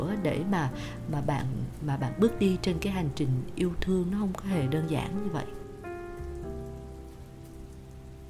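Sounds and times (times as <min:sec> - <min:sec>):
steady rain pattering on a surface: 0:00.0 - 0:08.2
speech: 0:00.2 - 0:05.6.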